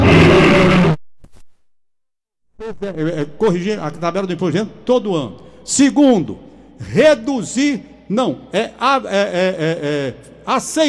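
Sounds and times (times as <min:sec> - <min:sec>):
lion roaring: 0:00.0 - 0:01.0
speech: 0:02.7 - 0:10.8.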